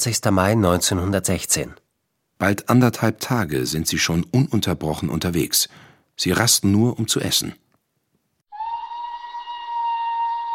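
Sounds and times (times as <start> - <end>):
speech: 0.0 - 7.7
steam whistle blowing at whaling station: 8.5 - 10.5.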